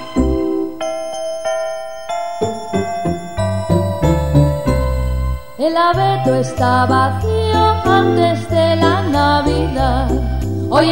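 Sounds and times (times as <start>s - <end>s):
bells ringing: 0.0s - 8.0s
speech: 5.6s - 10.9s.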